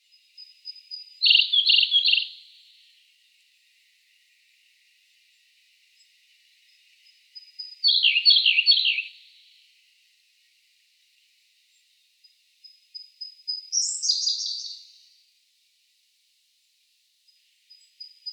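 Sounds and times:
Siberian blue robin voice: 0:00.4 - 0:02.4, 0:07.4 - 0:09.2, 0:13.0 - 0:15.0.

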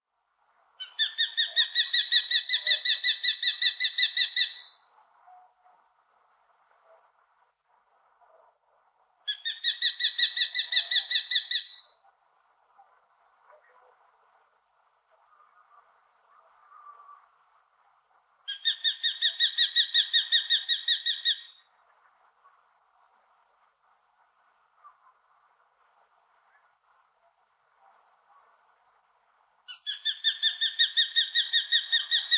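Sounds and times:
common kestrel calling: 0:00.8 - 0:04.8, 0:09.3 - 0:11.9, 0:18.5 - 0:21.6, 0:29.7 - 0:32.3.

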